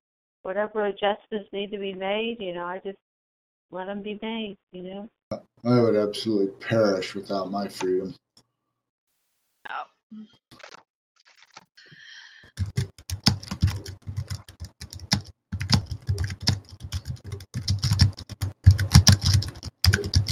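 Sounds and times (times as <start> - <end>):
speech: 0.4 - 3.1, 3.7 - 8.2, 9.7 - 10.7
typing on a computer keyboard: 12.5 - 20.2.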